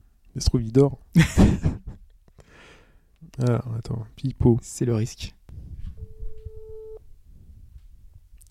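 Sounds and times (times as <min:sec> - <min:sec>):
speech: 0:00.4 - 0:01.8, 0:03.4 - 0:05.4
laughter: 0:01.2 - 0:02.0
ringback tone of outgoing phone call: 0:06.0 - 0:07.0.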